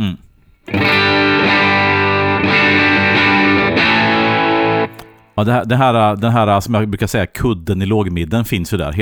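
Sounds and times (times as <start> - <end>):
electric guitar chord through a distortion pedal: 0.7 - 5.1
speech: 5.4 - 9.0.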